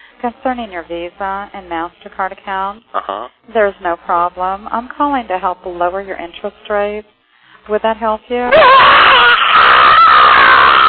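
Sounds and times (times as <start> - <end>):
speech: 0.2 - 9.4
woman screaming loudly into a phone: 8.5 - 10.8.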